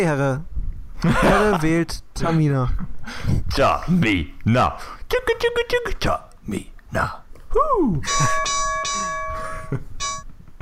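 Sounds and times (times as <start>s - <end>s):
speech: 0.0s - 8.7s, 9.7s - 9.9s
laughter: 1.0s - 1.7s
bright ringing gong-like sound effect: 8.1s - 10.3s.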